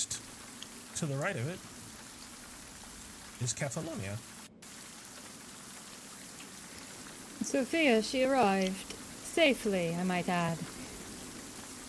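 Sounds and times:
steady rain in a video game scene: 0.0s - 11.8s
speech: 1.0s - 1.8s, 3.4s - 4.3s, 7.5s - 10.7s.

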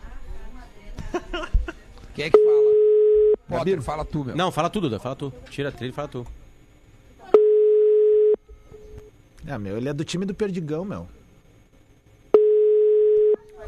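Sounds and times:
laughter: 1.0s - 1.9s
speech: 2.2s - 2.7s, 3.5s - 6.4s, 9.5s - 11.2s
phone line ringback tone: 2.4s - 3.4s, 7.4s - 8.4s, 12.3s - 13.4s.

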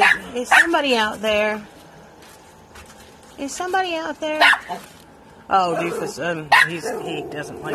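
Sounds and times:
small female dog barking: 0.0s - 0.8s, 4.4s - 4.8s, 5.7s - 7.7s
speech: 0.4s - 1.8s, 3.4s - 7.7s.

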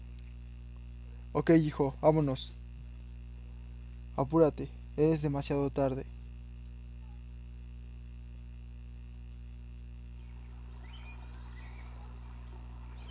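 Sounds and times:
steady low hum: 0.0s - 13.0s
speech: 1.3s - 2.6s, 4.2s - 6.2s
small birds chirping: 10.2s - 13.0s.

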